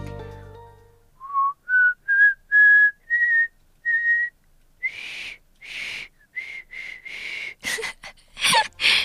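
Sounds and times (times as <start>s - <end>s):
person whistling a short tune: 1.2s - 7.2s.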